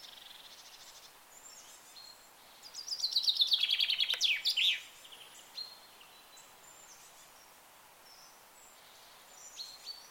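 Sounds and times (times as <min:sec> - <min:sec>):
bird giving a rapid run of high chirps: 0:00.0 - 0:10.0.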